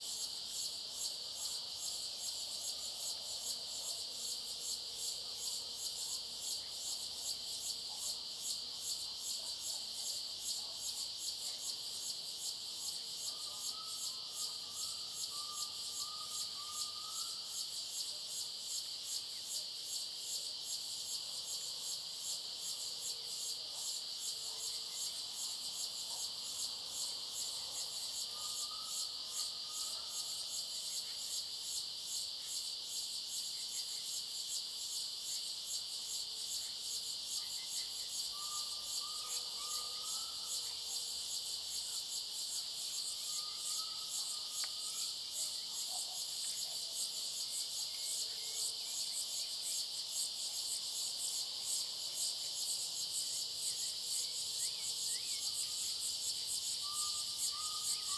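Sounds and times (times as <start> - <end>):
cicadas in a clearing in the Cerrado with a thin high-pitched sound: 0.0 - 58.1.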